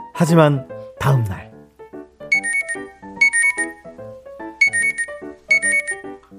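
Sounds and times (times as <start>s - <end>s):
speech: 0.2s - 1.5s
alarm clock ringing with a bright electronic melody: 2.3s - 3.7s, 4.6s - 6.1s.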